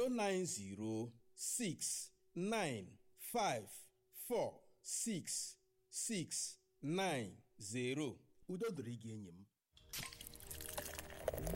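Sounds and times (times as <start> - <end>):
speech: 0.0 - 10.1, 11.3 - 11.5
extra stout beer pouring: 9.8 - 11.5.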